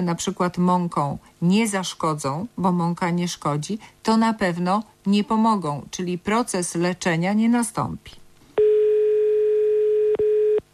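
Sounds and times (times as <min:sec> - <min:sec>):
speech: 0:00.0 - 0:08.2
telephone tone on a call to a number: 0:08.6 - 0:10.7.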